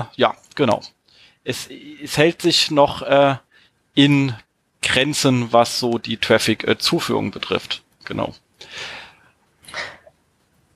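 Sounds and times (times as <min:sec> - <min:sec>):
speech: 0:00.0 - 0:09.0
person breathing audibly: 0:01.1 - 0:01.5, 0:03.5 - 0:03.8, 0:08.6 - 0:10.1.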